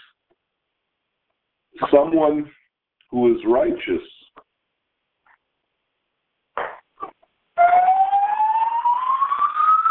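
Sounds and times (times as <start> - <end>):
speech: 1.8 - 4.2
building fire alarm sounding: 7.6 - 9.9.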